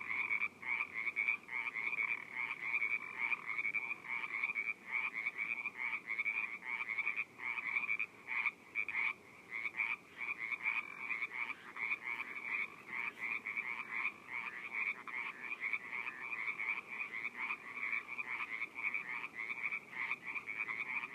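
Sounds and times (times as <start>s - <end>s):
frogs calling in a dense chorus in a pond in Orinda California: 0.0s - 21.1s.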